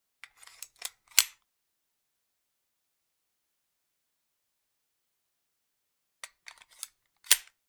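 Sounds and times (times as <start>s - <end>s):
9mm pistol magazine being inserted: 0.3s - 1.4s, 6.2s - 7.6s.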